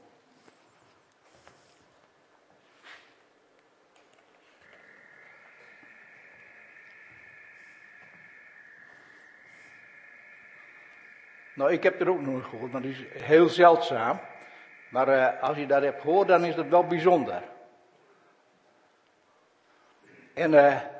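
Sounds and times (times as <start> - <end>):
European nightjar churring: 4.6 - 17.4
speech: 11.6 - 17.5, 20.4 - 20.9.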